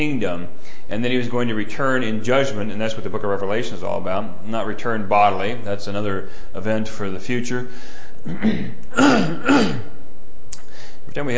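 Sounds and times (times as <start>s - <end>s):
speech: 0.0s - 10.0s, 11.1s - 11.3s
person clearing throat to dislodge something stuck in the throat during communion: 8.2s - 10.0s.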